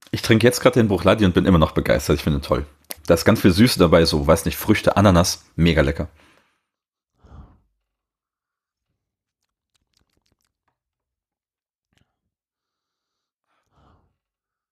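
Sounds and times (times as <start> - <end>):
speech: 0.1 - 6.3
heavy breathing at a microphone: 6.1 - 8.8, 12.0 - 14.7.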